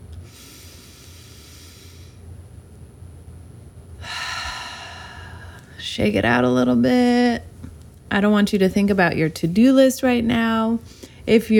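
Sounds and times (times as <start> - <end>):
slow deep breath: 0.3 - 2.3, 4.0 - 5.8
speech: 6.0 - 7.5, 8.1 - 11.5.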